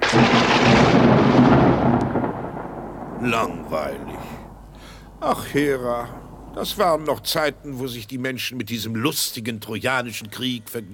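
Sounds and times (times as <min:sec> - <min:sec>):
thunder rumbling: 0:00.0 - 0:08.2
speech: 0:03.2 - 0:04.3, 0:05.2 - 0:10.9.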